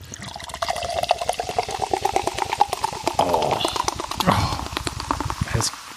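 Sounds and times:
bottle of cider opening: 0.0s - 5.7s
cider pouring from a bottle: 0.0s - 5.9s
person exclaiming: 3.2s - 4.8s.

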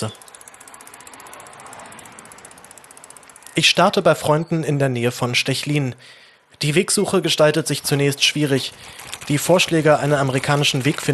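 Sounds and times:
speech: 0.0s - 0.2s, 3.6s - 11.1s
bicycle freewheel ratchet clicking while riding: 0.0s - 4.3s, 7.8s - 11.1s
road noise: 0.0s - 11.1s.

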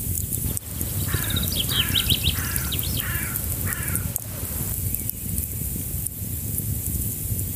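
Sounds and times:
campfire pops and crackles: 0.2s - 7.4s
small brook murmuring: 0.5s - 4.8s
bird calling repeated downward-slurring notes: 0.5s - 5.0s.

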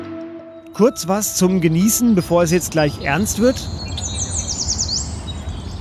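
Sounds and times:
birds chirping and singing: 0.5s - 5.7s
speech: 0.8s - 3.9s.

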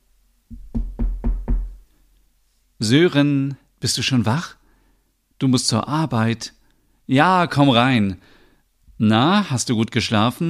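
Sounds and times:
knocking on a wooden door in a shared flat: 0.5s - 1.8s
speech: 2.8s - 4.6s, 5.4s - 8.4s, 9.0s - 10.4s.

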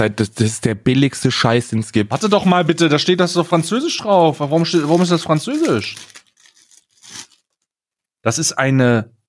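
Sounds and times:
speech: 0.0s - 6.2s, 8.2s - 9.2s
storage pouch tearing open: 4.6s - 7.6s.

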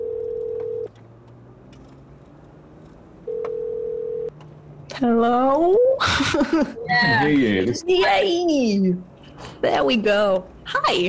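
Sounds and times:
telephone line ringback tone: 0.0s - 0.9s, 3.3s - 4.3s
speech: 5.0s - 11.0s.

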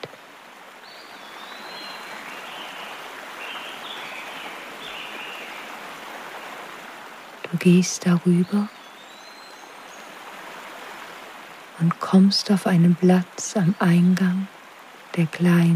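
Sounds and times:
small river flowing: 0.0s - 15.7s
faint birdcalls: 0.8s - 6.7s, 8.2s - 10.7s
speech: 7.5s - 8.8s, 12.1s - 14.6s, 15.2s - 15.7s.

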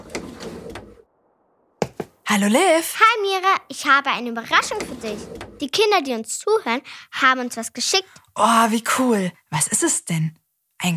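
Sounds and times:
knocking on a window: 1.8s - 2.2s
speech: 2.3s - 10.9s.

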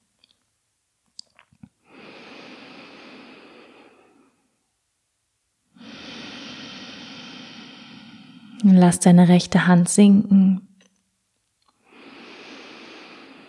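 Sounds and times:
nasal exhale through the right nostril in an alternate-nostril breathing exercise: 1.8s - 4.4s, 5.8s - 8.6s, 11.8s - 13.4s
speech: 8.6s - 10.7s.

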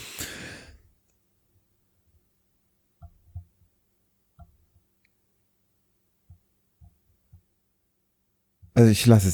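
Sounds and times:
deep breath in: 0.0s - 0.8s
speech: 8.8s - 9.3s.

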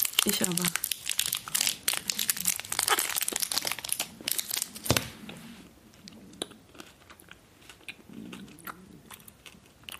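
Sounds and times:
chewing and crunching of Toblerone chocolate: 0.0s - 4.8s, 6.0s - 9.9s
foil wrapper of a Toblerone chocolate bar crinkling: 0.0s - 5.0s
speech: 0.2s - 0.9s.

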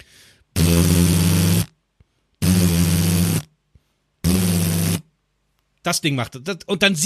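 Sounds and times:
person imitating Gatling gun firing with mouth: 0.6s - 1.7s, 2.4s - 3.5s, 4.2s - 5.1s
speech: 5.8s - 7.0s.

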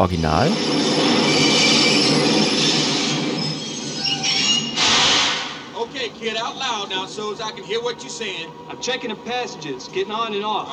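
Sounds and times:
speech: 0.0s - 1.3s, 6.0s - 10.7s
subway train wheels squealing on rails: 0.4s - 7.6s.

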